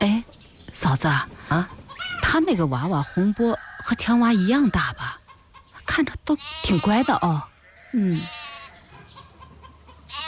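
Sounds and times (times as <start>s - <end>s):
speech: 0.0s - 1.8s, 2.4s - 5.1s, 6.0s - 8.4s
lamb bleating: 6.3s - 7.4s, 8.0s - 8.8s, 10.1s - 10.2s.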